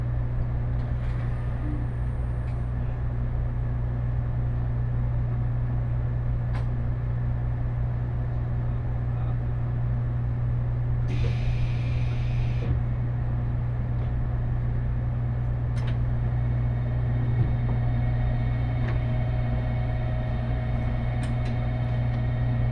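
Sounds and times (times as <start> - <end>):
express train cabin hum: 0.0 - 22.7.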